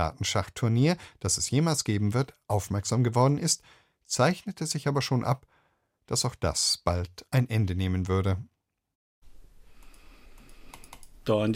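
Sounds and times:
speech: 0.0 - 8.5, 11.2 - 11.5
computer clicking: 9.8 - 11.2.

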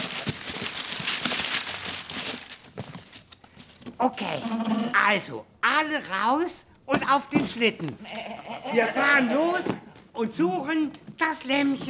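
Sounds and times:
wrapping paper crinkling as a Christmas present is unwrapped: 0.0 - 4.0
speech: 4.0 - 11.8.

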